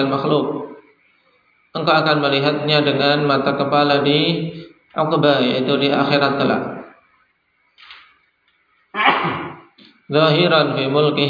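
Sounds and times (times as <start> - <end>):
speech: 0.0 - 0.8, 1.8 - 6.8, 10.1 - 11.2
person sneezing during a religious lecture: 9.0 - 9.8.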